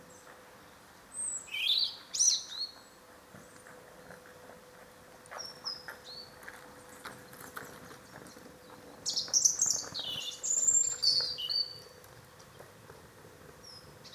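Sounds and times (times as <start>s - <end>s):
European robin Erithacus rubecula singing: 1.1s - 3.7s, 5.3s - 12.7s, 13.5s - 14.1s.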